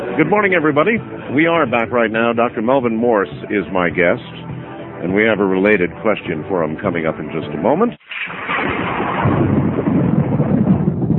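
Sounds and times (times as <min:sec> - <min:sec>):
speech: 0:00.2 - 0:09.6
thunder from a lightning strike rumbling: 0:08.1 - 0:11.1.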